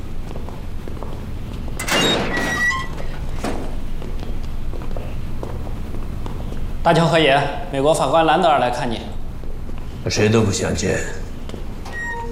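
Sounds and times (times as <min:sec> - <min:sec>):
door swinging open with a creaking squeak: 0:01.8 - 0:03.8, 0:11.8 - 0:12.3
speech: 0:06.8 - 0:09.1, 0:10.0 - 0:11.2.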